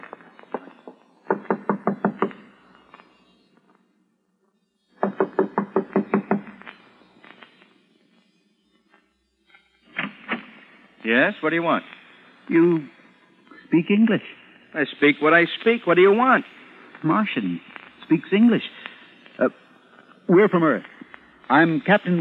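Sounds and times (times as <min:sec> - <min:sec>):
firm knocking on a door: 0:01.3 - 0:02.3, 0:05.0 - 0:06.5
speech: 0:11.1 - 0:13.0, 0:13.7 - 0:18.7, 0:19.4 - 0:19.6, 0:20.3 - 0:20.9, 0:21.5 - 0:22.2.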